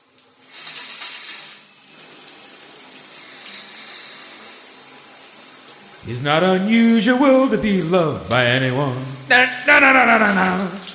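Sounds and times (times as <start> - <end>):
shower spraying water: 0.0 - 10.9
speech: 6.0 - 10.8.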